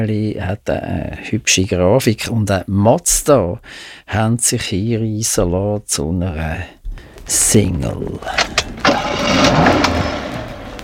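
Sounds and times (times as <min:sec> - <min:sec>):
speech: 0:00.0 - 0:10.1
car engine cranking, starting and running: 0:08.6 - 0:10.8.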